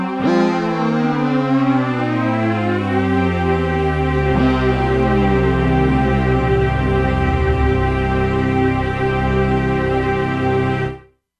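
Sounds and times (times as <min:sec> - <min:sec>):
synth portamento glide from factory presets: 0:00.2 - 0:10.9.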